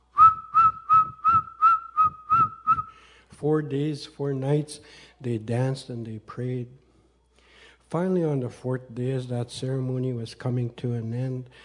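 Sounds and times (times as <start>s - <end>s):
eagle bone whistles blown by men at a ceremony: 0.0s - 3.1s
speech: 3.4s - 6.8s, 7.9s - 11.6s.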